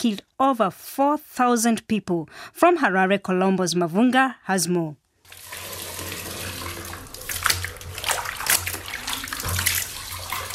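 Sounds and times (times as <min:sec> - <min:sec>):
speech: 0:00.0 - 0:05.6
water splashing as a woman does laundry in the Kuwisi River: 0:05.3 - 0:10.5.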